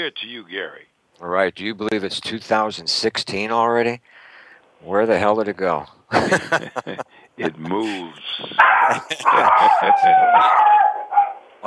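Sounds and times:
speech: 0:00.0 - 0:04.2, 0:04.8 - 0:10.8
laughter: 0:06.1 - 0:10.2
several dogs barking: 0:08.6 - 0:11.4.

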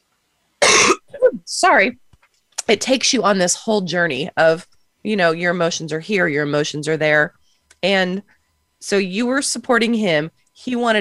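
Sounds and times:
loud cough: 0:00.6 - 0:01.1
speech: 0:01.5 - 0:02.0, 0:02.7 - 0:10.9.

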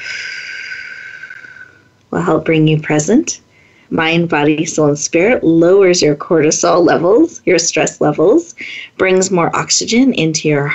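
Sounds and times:
slow exhale through pursed lips during a breathing exercise: 0:00.0 - 0:01.9
speech: 0:02.2 - 0:10.7.

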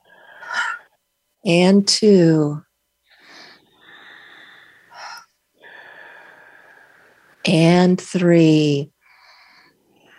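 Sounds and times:
speech: 0:01.4 - 0:02.7, 0:07.5 - 0:08.9
deep breathing in through the nose and out through the mouth: 0:03.1 - 0:07.4, 0:09.0 - 0:10.1.

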